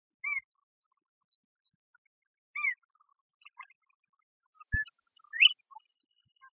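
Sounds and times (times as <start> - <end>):
willet calling: 4.8 - 5.6.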